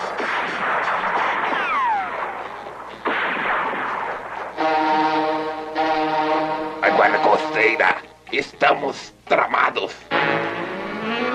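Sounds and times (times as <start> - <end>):
gunfire bursts from a shooter in a piloted aircraft: 0.0 - 5.6
steady horn-like tone: 4.5 - 8.9, 10.0 - 11.2
speech: 7.6 - 10.0.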